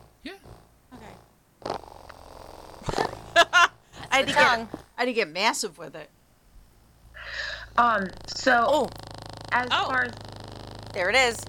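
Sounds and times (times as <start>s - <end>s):
toy's purring motor humming: 0.0s - 4.9s, 7.8s - 11.4s
speech: 4.2s - 6.2s, 7.8s - 10.3s, 10.9s - 11.4s.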